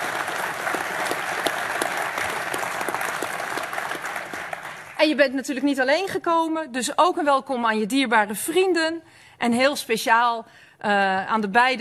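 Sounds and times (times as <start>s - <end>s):
audience applause: 0.0s - 5.0s
speech: 5.0s - 11.7s.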